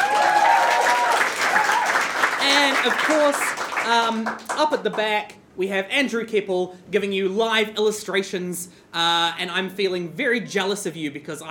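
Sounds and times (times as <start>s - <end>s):
audience applause for the lighting operator: 0.0s - 4.6s
speech: 2.8s - 11.4s.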